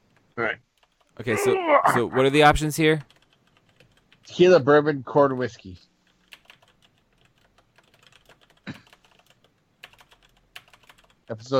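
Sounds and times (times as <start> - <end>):
typing on a computer keyboard: 0.0 - 1.2, 2.8 - 4.3, 6.0 - 11.3
speech: 0.4 - 3.2, 4.3 - 5.9, 11.3 - 11.5.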